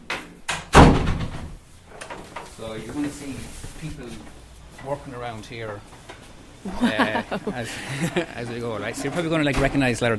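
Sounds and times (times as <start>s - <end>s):
green door slamming at a distribution centre for Irish products: 0.5s - 1.6s
speech: 2.6s - 10.1s
laughter: 6.6s - 8.5s.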